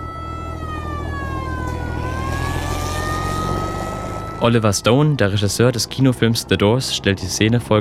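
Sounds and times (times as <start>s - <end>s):
high slowly wavering siren-like wail: 0.0s - 5.7s
car driving along a country road between Albuquerque and Santa Fe: 0.0s - 7.7s
speech: 4.4s - 7.7s.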